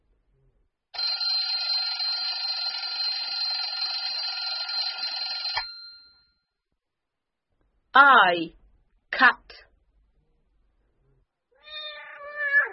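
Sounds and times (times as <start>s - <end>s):
alarm clock ringing with a metallic jangle: 1.0s - 6.3s
speech: 8.0s - 8.6s, 9.2s - 9.7s.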